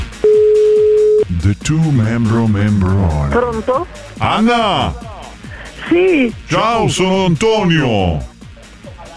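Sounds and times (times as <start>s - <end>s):
telephone tones as a call is placed: 0.2s - 1.3s
speech: 1.5s - 5.1s, 5.9s - 8.3s.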